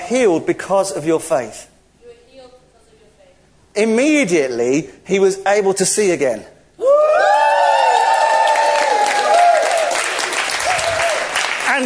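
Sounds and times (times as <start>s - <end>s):
speech: 0.1s - 1.7s, 3.8s - 7.3s
children cheering with high-pitched whoops: 6.8s - 11.5s
children clapping: 7.4s - 11.8s.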